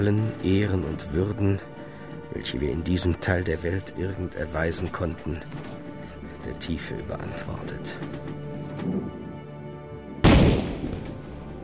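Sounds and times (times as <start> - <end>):
speech: 0.0 - 5.9, 6.5 - 9.1
ship's cannon salute shot during a burial at sea: 10.2 - 11.2.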